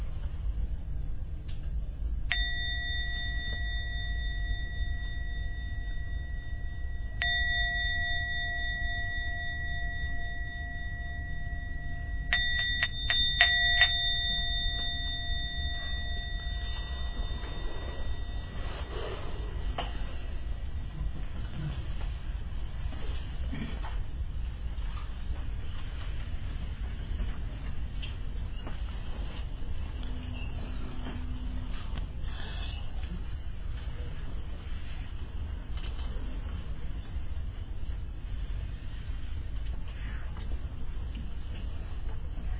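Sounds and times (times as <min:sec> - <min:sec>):
low hum: 0:00.0 - 0:42.5
gong struck to end a meditation: 0:02.3 - 0:22.0.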